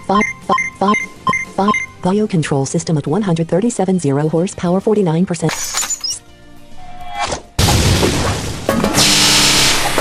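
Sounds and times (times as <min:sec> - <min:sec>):
speech: 0:00.1 - 0:01.0, 0:01.6 - 0:05.7
fireball explosion in a video game: 0:07.6 - 0:09.9.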